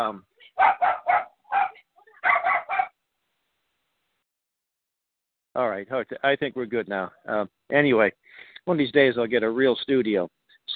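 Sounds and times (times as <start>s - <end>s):
speech: 0.0s - 0.8s, 5.6s - 10.7s
dogs barking: 0.6s - 3.0s.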